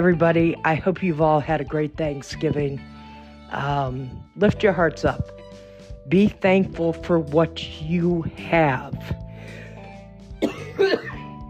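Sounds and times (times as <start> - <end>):
speech: 0.0 - 2.9, 3.5 - 5.4, 6.1 - 9.6
person coughing: 10.4 - 11.3.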